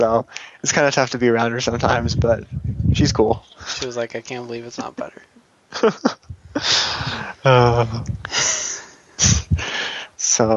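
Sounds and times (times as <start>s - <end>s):
speech: 0.0s - 8.6s, 10.3s - 10.5s
heavy breathing: 0.3s - 0.6s, 6.4s - 10.2s
laughter: 5.7s - 10.5s.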